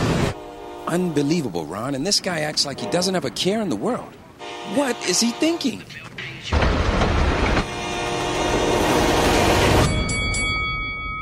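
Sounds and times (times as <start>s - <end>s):
train passing on railroad tracks: 0.0s - 10.6s
speech: 0.9s - 6.8s
steady high-pitched ringing tone: 9.8s - 11.2s.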